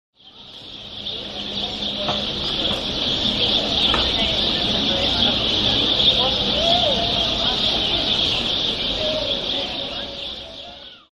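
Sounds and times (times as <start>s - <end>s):
sparrows chirping in a pedestrian street in Rosario: 0.2s - 11.1s.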